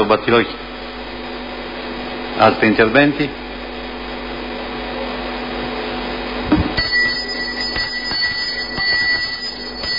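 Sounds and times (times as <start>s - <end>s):
speech: 0.0s - 0.7s, 2.4s - 3.4s
low hum: 0.0s - 9.9s
small bell rung to call a town council meeting to order: 6.8s - 9.9s.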